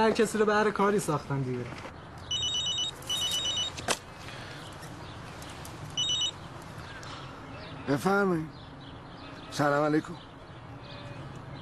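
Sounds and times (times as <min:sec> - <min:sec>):
speech: 0:00.0 - 0:02.0, 0:07.9 - 0:08.6, 0:09.6 - 0:10.3
telephone ringing: 0:02.3 - 0:03.8, 0:06.0 - 0:06.4.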